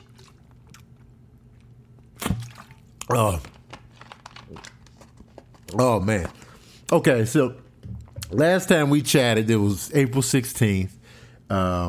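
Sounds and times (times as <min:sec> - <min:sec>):
person sipping water: 0:00.0 - 0:03.7
speech: 0:03.1 - 0:03.5, 0:05.7 - 0:07.6, 0:08.3 - 0:11.8.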